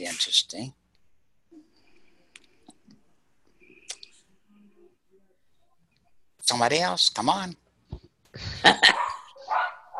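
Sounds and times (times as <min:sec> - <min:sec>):
speech: 0:00.0 - 0:00.8, 0:06.5 - 0:07.6, 0:08.4 - 0:09.9
dog barking: 0:08.8 - 0:09.9.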